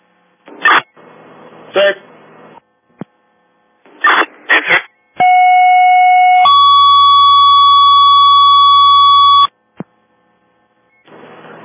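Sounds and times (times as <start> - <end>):
faint hum: 0.0 - 11.6
radio static bursts: 4.0 - 4.9
fire department second-alarm electronic tones: 5.2 - 9.5.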